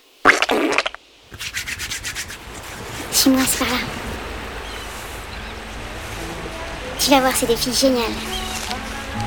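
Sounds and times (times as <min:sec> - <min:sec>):
hands rubbing together with hand sanitizer gel: 0:01.3 - 0:04.0
speech: 0:03.2 - 0:04.1, 0:07.0 - 0:08.4.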